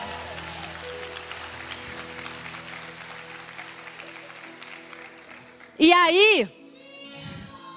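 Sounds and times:
audience applauding at a church service: 0.0 - 6.0
speech: 5.8 - 6.6.

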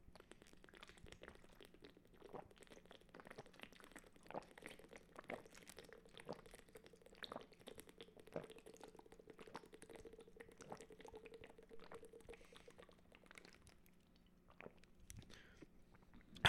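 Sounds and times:
person gulping water from a bottle: 0.1 - 15.0, 16.2 - 16.4.

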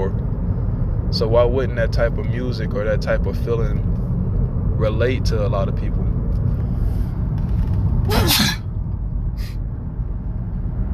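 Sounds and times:
steady low rumble: 0.0 - 10.9
speech: 1.1 - 3.9, 4.8 - 6.0
sharp sneeze: 8.1 - 8.6.

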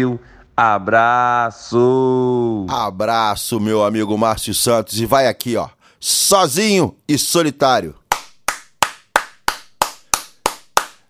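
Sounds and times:
speech: 0.0 - 8.0
one person clapping hands in applause: 8.0 - 11.0.

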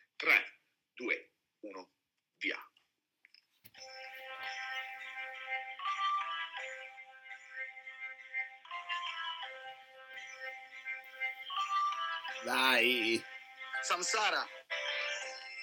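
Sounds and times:
speech: 0.2 - 2.7, 12.4 - 14.6
instrumental karaoke backing track with synthetic melody: 4.2 - 15.6.

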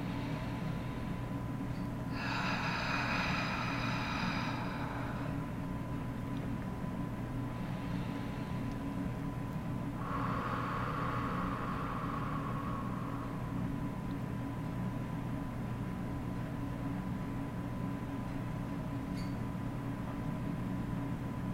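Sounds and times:
deep slow lower belly breathing: 0.0 - 6.1, 7.4 - 14.2
steady low hum: 0.0 - 21.5.

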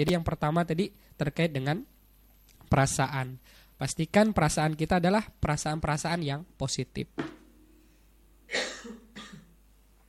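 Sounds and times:
speech: 0.0 - 1.9, 2.7 - 7.4, 8.5 - 9.0
person coughing dryly: 8.5 - 9.6.

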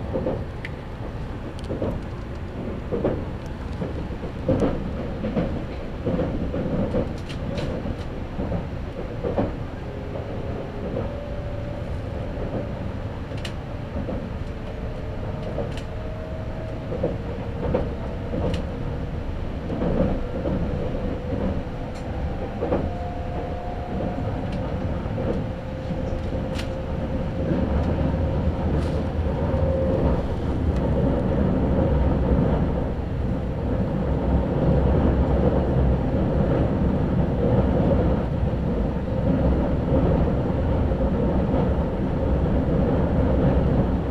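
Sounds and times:
express train wheels and motors rumbling on a single-track line: 0.0 - 44.0.

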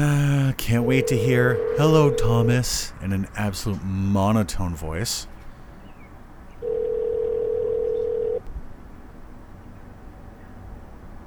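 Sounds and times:
faint noise: 0.0 - 11.2
electronic ringing tone of an unanswered phone call: 0.7 - 2.7, 6.6 - 8.4
speech: 0.7 - 5.3.

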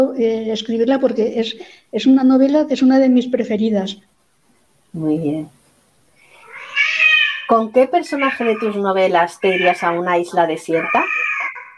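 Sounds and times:
speech: 0.0 - 4.1, 4.9 - 5.6, 7.5 - 11.2
angry female cat meowing: 6.4 - 7.5, 9.4 - 10.0, 10.7 - 11.7.

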